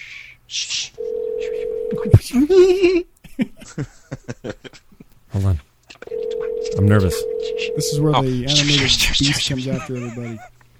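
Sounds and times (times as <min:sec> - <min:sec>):
telephone ring tone on an outgoing call to Pennsylvania: 0:01.0 - 0:02.2, 0:06.1 - 0:08.1
speech: 0:01.9 - 0:03.1, 0:06.9 - 0:10.6
laughter: 0:03.2 - 0:05.1, 0:08.8 - 0:10.6.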